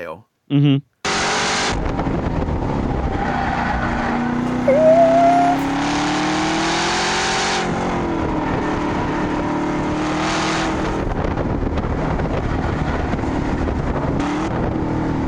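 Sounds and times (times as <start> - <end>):
race car engines on a track: 1.1 - 15.2
high squeal: 4.4 - 5.9.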